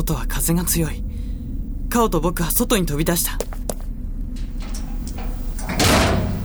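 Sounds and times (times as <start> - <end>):
speech: 0.0 - 1.1, 1.9 - 3.5
heavy iron door swinging open with a grinding rumble: 4.4 - 6.4
sharp clicks of a lock turning: 4.4 - 6.4.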